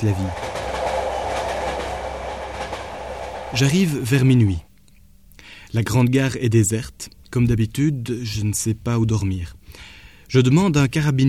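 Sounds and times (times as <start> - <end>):
speech: 0.0 - 0.5, 3.5 - 4.7, 5.7 - 11.2
train speeding along the rails toward Trieste on Italy's Adriatic coast: 0.0 - 4.6.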